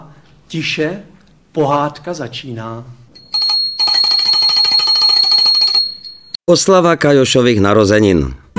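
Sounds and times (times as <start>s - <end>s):
speech: 0.5s - 3.0s, 6.5s - 8.4s
small hand bell ringing: 3.2s - 6.4s.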